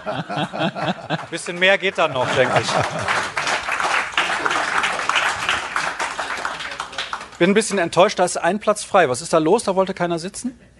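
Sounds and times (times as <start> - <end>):
speech: 0.0 - 3.3, 7.4 - 10.7
laughter: 0.0 - 7.0
live audience applauding: 0.0 - 8.0.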